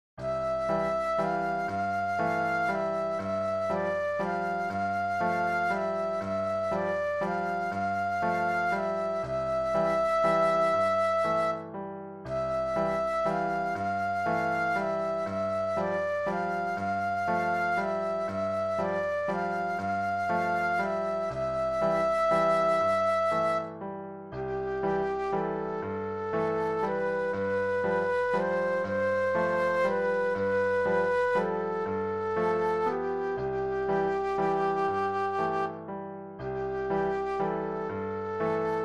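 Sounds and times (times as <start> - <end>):
classical flute solo: 0.2 - 38.8.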